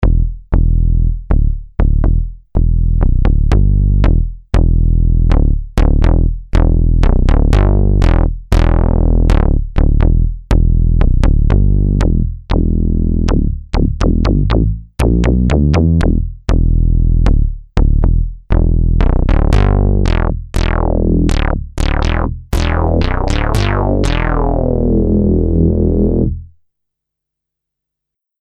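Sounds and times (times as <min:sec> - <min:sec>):
rumbling bass: 0:00.0 - 0:26.6.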